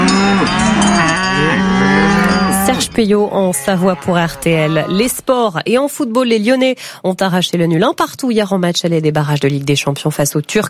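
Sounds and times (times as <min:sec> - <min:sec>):
cattle mooing in Savoie: 0:00.0 - 0:05.3
speech: 0:02.7 - 0:10.6.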